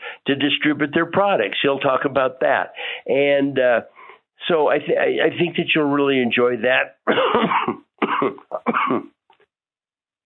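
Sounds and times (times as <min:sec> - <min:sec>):
speech: 0:00.3 - 0:09.1
harsh raspy coughing: 0:07.0 - 0:09.2
throat clearing: 0:07.1 - 0:09.2.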